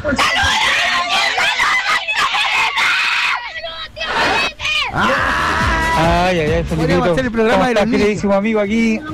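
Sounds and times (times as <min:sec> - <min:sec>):
speech: 0:00.0 - 0:00.6, 0:06.6 - 0:09.1
group of children shouting and screaming a man's name: 0:00.0 - 0:06.2.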